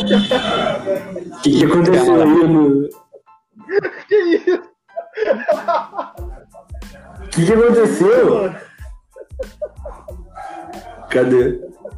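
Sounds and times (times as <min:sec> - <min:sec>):
laughter: 0:00.0 - 0:01.4, 0:03.6 - 0:07.0, 0:08.4 - 0:11.9
speech: 0:00.1 - 0:00.6, 0:01.4 - 0:03.0, 0:07.4 - 0:08.6, 0:11.1 - 0:11.7
dog barking: 0:09.8 - 0:11.9.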